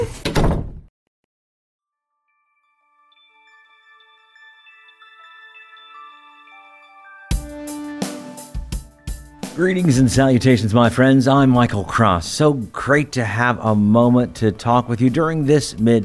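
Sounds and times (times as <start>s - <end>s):
door slamming shut: 0.0s - 0.9s
soft sustained musical tones: 2.3s - 8.1s
speech: 9.6s - 16.0s.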